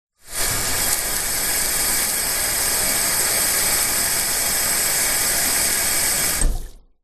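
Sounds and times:
household shower running outside, switched on and off: 0:00.2 - 0:06.8.

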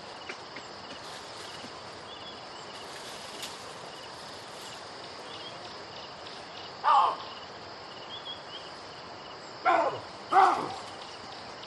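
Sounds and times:
low background hiss: 0:01.0 - 0:11.6
baboon barks: 0:09.6 - 0:10.9.

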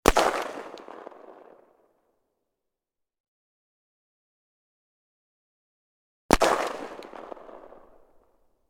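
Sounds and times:
Tikka gun: 0:00.0 - 0:02.0, 0:06.3 - 0:08.6.

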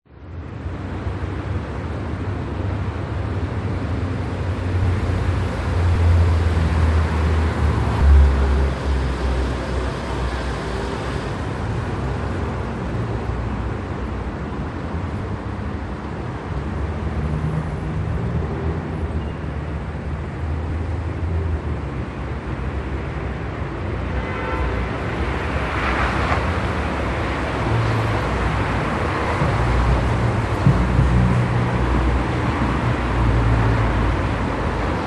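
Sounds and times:
traffic in Germany: 0:00.0 - 0:35.0.

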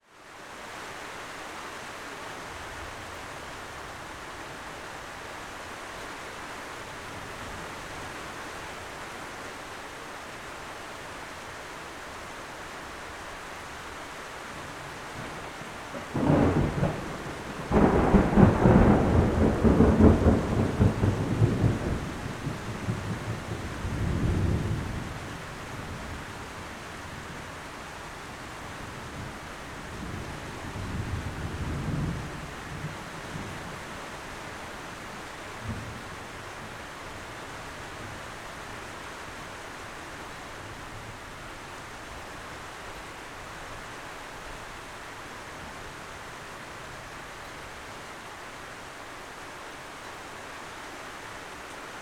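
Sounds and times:
light rain: 0:00.0 - 0:52.0
close approaching thunder: 0:15.9 - 0:23.4.

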